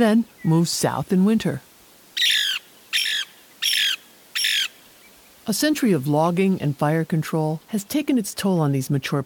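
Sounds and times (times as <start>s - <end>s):
speech: 0.0s - 1.7s, 5.5s - 9.2s
Lewis's woodpecker harsh squawking calls: 2.2s - 4.8s.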